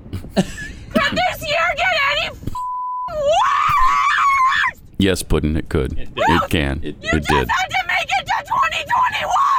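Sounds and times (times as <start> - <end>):
speech: 0.4 - 1.7, 5.0 - 7.8
people screaming in a car: 3.1 - 4.8, 7.6 - 9.5.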